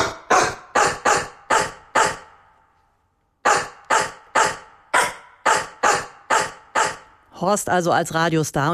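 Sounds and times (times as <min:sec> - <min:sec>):
bulldog barks edited to follow a pop song's beat: 0:00.0 - 0:02.5, 0:03.4 - 0:07.2
speech: 0:07.4 - 0:08.7.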